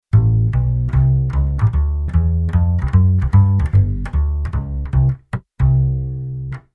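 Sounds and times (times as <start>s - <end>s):
jazz bass arrangement: 0.0s - 6.7s.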